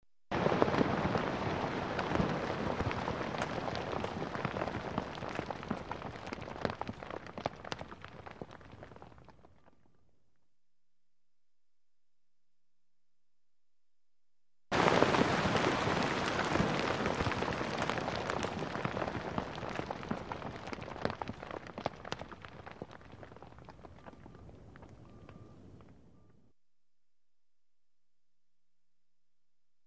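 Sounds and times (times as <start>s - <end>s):
dirt debris, rock and sand falling: 0.3s - 9.9s, 14.7s - 25.9s.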